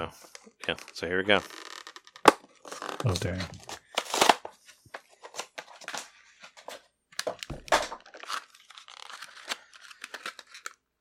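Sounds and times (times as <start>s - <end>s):
speech: 0.0s - 1.6s, 3.0s - 3.8s
sealed amiibo toy packaging of plastic and cardboard being torn open: 1.6s - 4.5s, 7.4s - 10.8s.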